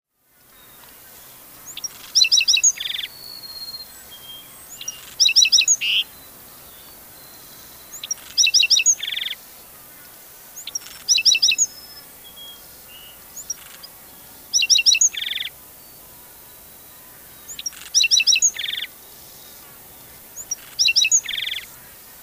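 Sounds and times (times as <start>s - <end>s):
Black-throated Sparrow Amphispiza bilineata: 0.4s - 22.2s.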